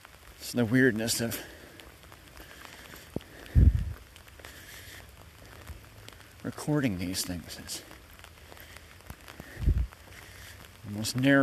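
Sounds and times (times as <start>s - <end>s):
steady quiet patter of rain: 0.0s - 11.4s
speech: 0.4s - 1.6s, 6.6s - 8.0s, 10.9s - 11.4s
faint low rumble: 1.4s - 4.6s, 7.9s - 10.9s.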